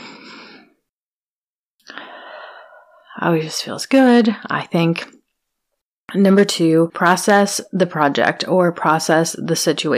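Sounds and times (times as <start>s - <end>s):
deep breaths during a calming exercise: 1.8s - 3.1s
speech: 3.2s - 5.2s, 6.1s - 9.9s.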